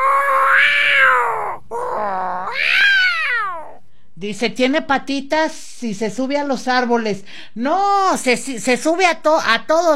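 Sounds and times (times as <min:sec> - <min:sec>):
cat meowing: 0:00.0 - 0:03.8
speech: 0:04.2 - 0:09.9.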